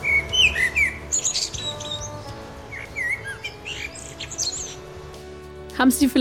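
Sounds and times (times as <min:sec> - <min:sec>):
Eurasian blackbird singing fluting whistled phrases: 0:00.0 - 0:05.0
speech: 0:05.8 - 0:06.1.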